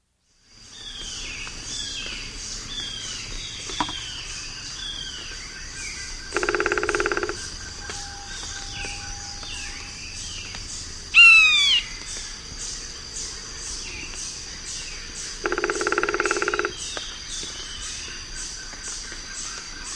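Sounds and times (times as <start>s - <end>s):
Rufous-winged Woodpecker in South America: 0.8s - 5.3s, 5.9s - 10.6s, 14.0s - 19.7s.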